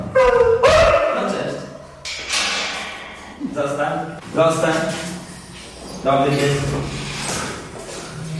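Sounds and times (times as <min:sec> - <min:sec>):
search-and-rescue dog barking and whimpering with high yips and whines: 0:00.1 - 0:01.2
people talking to a dog: 0:03.4 - 0:05.1, 0:06.0 - 0:06.8.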